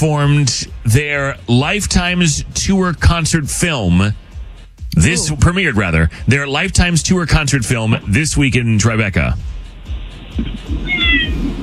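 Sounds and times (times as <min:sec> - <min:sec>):
speech: 0:00.0 - 0:04.2, 0:05.0 - 0:09.6
soft low thumps: 0:00.0 - 0:11.6
cat meowing: 0:10.7 - 0:11.6.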